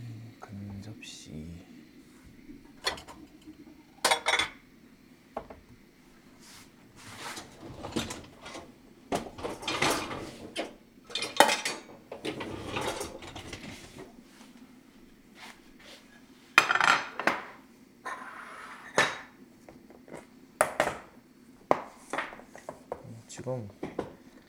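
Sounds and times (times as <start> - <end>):
dishes and containers clinking: 2.3 - 4.6, 7.3 - 14.0, 16.6 - 19.4
speech: 23.4 - 23.9.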